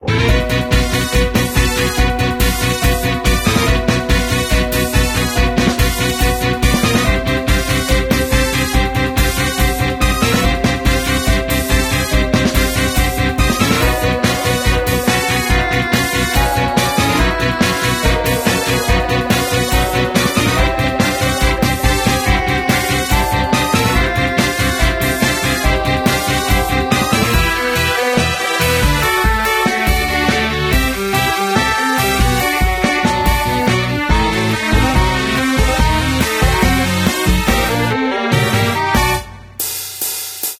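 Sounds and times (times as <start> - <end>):
boss battle background music: 0.0 - 39.6.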